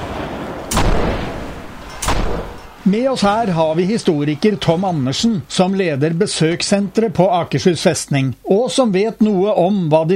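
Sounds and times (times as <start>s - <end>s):
gunshots echoing outdoors on fortress ramparts: 0.0s - 3.6s
speech: 2.9s - 10.1s.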